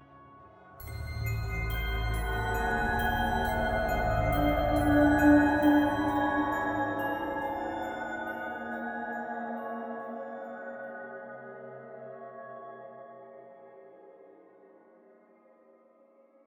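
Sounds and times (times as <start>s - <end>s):
suspense music: 0.8s - 8.8s.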